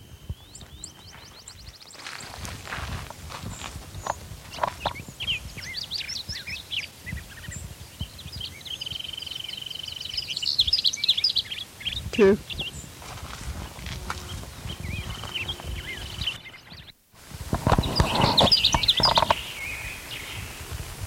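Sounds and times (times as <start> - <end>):
bird chirping and trilling: 0.0 - 13.0, 14.0 - 17.0, 17.6 - 20.7
rustling, crunching footsteps: 0.4 - 6.4, 12.6 - 16.4
speech: 12.2 - 12.5.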